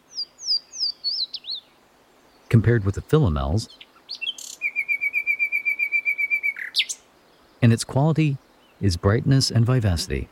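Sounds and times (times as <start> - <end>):
Louisiana water thrush singing: 0.0 - 2.6, 3.6 - 7.6
speech: 2.6 - 3.9, 7.6 - 10.2.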